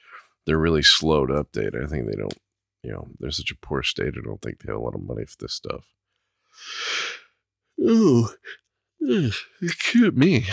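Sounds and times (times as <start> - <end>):
speech: 0.5 - 6.0, 7.8 - 10.5
human yawn with voiced groan: 7.8 - 9.6.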